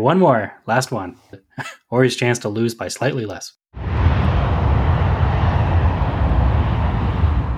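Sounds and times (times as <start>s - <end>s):
speech: 0.0s - 3.8s
airplane engine roar: 3.8s - 7.5s.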